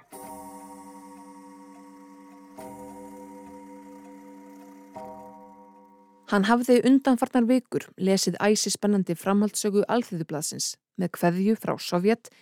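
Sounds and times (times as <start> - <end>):
clock striking with deep resonant bell tones: 0.0 - 6.5
speech: 6.3 - 12.4.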